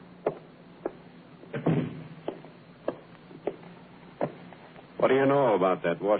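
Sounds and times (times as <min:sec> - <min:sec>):
door swinging shut with a dull thud: 0:01.6 - 0:02.4
speech: 0:05.0 - 0:06.1.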